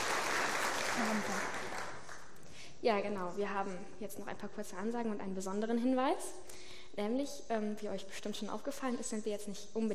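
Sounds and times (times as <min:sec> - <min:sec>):
applause for a guest preacher at a church service: 0:00.0 - 0:02.4
speech: 0:01.0 - 0:01.6, 0:02.8 - 0:09.9.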